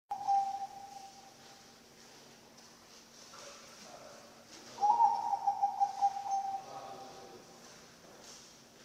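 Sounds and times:
Bangkok-type zebra dove cooing song: 0:00.1 - 0:01.2, 0:04.8 - 0:07.0
faint steady hum: 0:00.1 - 0:08.8.

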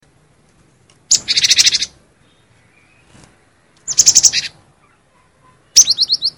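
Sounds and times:
cinereous tit singing high chattering notes and descending whistles: 0:01.1 - 0:03.2, 0:03.8 - 0:06.3.

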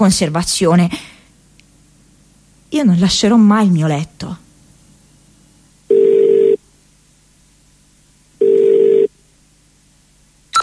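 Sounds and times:
speech: 0:00.0 - 0:01.1, 0:02.7 - 0:04.4
telephone answering machine ringing tones: 0:05.9 - 0:06.6, 0:08.4 - 0:09.1.

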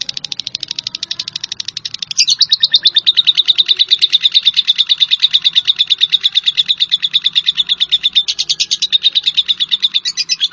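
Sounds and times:
Java sparrow song: 0:00.0 - 0:10.5.

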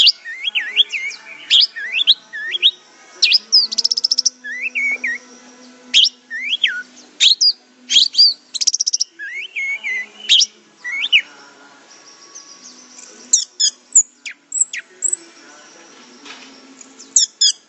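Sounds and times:
Orange-headed thrush singing: 0:00.0 - 0:17.6.

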